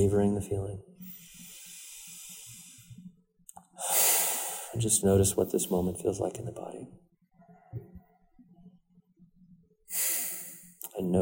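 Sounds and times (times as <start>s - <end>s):
speech: 0.0s - 1.2s, 4.8s - 7.1s, 11.0s - 11.2s
slow inhaling breath during a guided relaxation: 1.0s - 3.1s, 3.8s - 4.8s, 9.9s - 10.8s.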